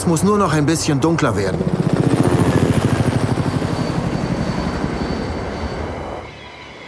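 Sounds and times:
speech: 0:00.0 - 0:02.0
helicopter flying overhead: 0:00.7 - 0:06.1.

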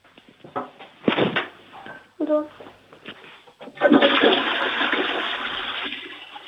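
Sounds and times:
speech: 0:02.3 - 0:02.6
toilet flushing: 0:03.6 - 0:06.4.

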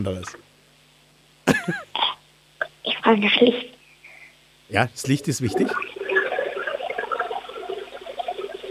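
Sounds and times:
speech: 0:00.0 - 0:00.4, 0:01.6 - 0:01.9, 0:03.1 - 0:03.8, 0:04.7 - 0:05.9
toilet flushing: 0:05.5 - 0:08.6.

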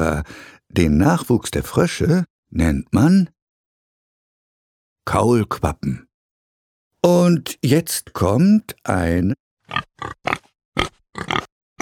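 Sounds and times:
speech: 0:00.0 - 0:03.4, 0:05.0 - 0:06.1, 0:07.0 - 0:11.5
pig grunting: 0:09.7 - 0:11.8.

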